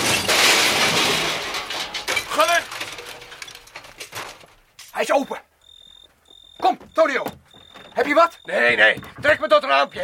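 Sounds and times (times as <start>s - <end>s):
car ramming through a heavy metal door: 0.0s - 4.4s
harsh shattering and breaking debris: 0.0s - 4.8s
speech: 5.0s - 5.5s, 6.7s - 7.4s, 8.0s - 10.0s.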